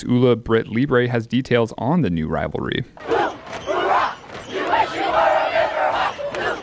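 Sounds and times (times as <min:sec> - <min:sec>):
speech: 0:00.0 - 0:03.4
large crowd at a high school football game cheering wildly: 0:03.0 - 0:06.6.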